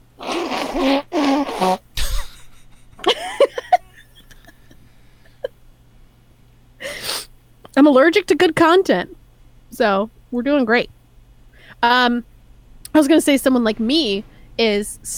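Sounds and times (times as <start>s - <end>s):
person blowing nose into an old shirt: 0.2s - 2.5s, 6.8s - 7.3s
faint squeaky sniffles: 0.2s - 2.7s, 6.8s - 7.3s
speech: 1.6s - 1.8s, 7.9s - 9.2s, 9.8s - 10.9s, 11.8s - 12.3s, 13.0s - 15.1s
laughter: 2.2s - 5.5s.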